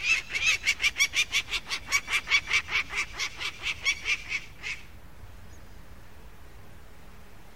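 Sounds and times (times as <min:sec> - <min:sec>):
peregrine falcon cacking: 0:00.0 - 0:04.9.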